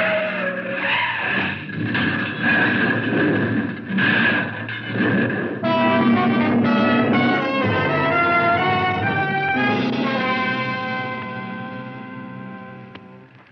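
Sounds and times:
car skidding with squealing tires: 0.0 - 12.4.

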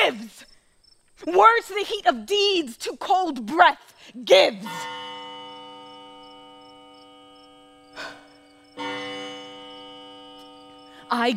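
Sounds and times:
speech: 1.2 - 5.0, 11.1 - 11.3
bell ringing with a sustained metallic hum: 4.7 - 11.3.

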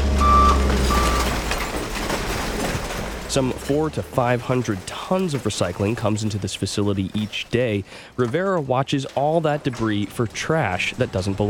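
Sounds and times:
garbage truck reversing alarm beeps: 0.0 - 1.8
industrial noise at a Rhode Island recycling facility: 0.0 - 11.4
low rumbling garbage truck diesel engine: 0.0 - 11.4
speech: 3.3 - 11.4.

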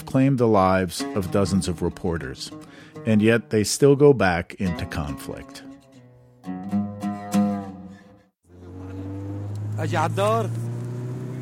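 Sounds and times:
speech: 0.1 - 5.7, 9.8 - 10.6
car engine droning while speeding down a road: 8.5 - 11.4.

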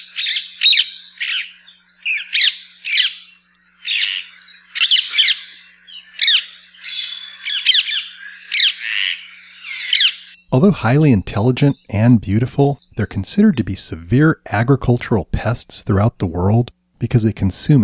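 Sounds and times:
flock of birds squawking: 0.0 - 10.4
speech: 10.5 - 17.8.

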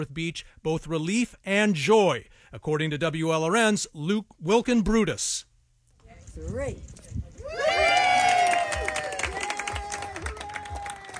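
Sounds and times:
speech: 0.0 - 5.5, 6.4 - 8.0
dignitaries and community members cheering at a ribbon cutting: 7.4 - 11.1
people clapping at a ribbon cutting: 7.6 - 11.1.

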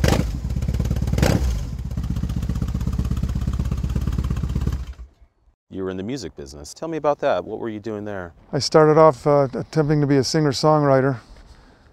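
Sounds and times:
German motorcycle engine with aftermarket exhaust pipes idling: 0.0 - 5.2
speech: 5.9 - 11.3.

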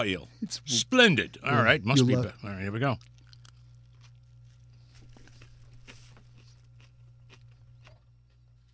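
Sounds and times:
speech: 0.0 - 3.1
steady low electrical hum: 0.0 - 8.7
chewing broiled eel: 2.9 - 8.7.

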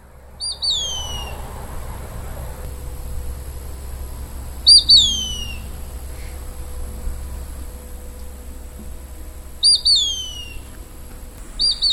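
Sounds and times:
low steady outdoor rumble: 0.0 - 11.9
Mississippi kite two-note whistle: 0.4 - 1.4, 4.6 - 6.4, 9.6 - 11.9.

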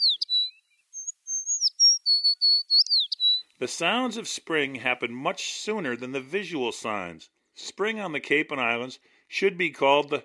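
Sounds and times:
tree sparrow calls and song: 0.0 - 3.6
speech: 3.6 - 10.2.

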